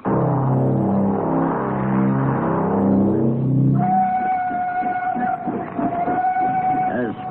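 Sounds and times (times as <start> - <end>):
train engine rumbling, moving slowly toward a switch and siding by a mine entrance: 0.0 - 7.2
long sustained train whistle tone: 3.6 - 7.2.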